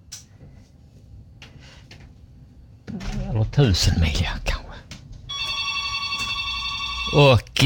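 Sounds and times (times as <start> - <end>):
speech: 2.9 - 4.5, 7.1 - 7.6
telephone ringing with a bright electronic tone: 5.3 - 7.6.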